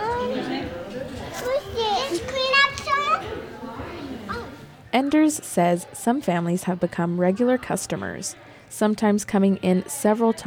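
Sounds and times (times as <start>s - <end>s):
young children chattering and squealing in indoor soft play area: 0.0s - 4.8s
young children shouting excitedly in indoor soft play area: 1.5s - 3.5s
speech: 4.9s - 10.4s.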